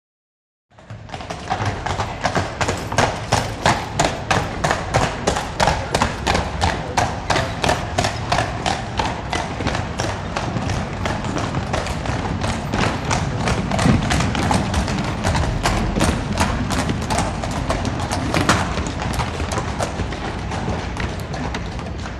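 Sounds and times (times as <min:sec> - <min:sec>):
horse carriage going uphill: 0:00.7 - 0:22.1.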